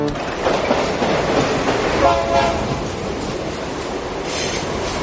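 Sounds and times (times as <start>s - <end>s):
train travelling to a town near the border with the British sector rumbling on rails: 0.1s - 5.0s
train horn blast: 1.9s - 3.0s.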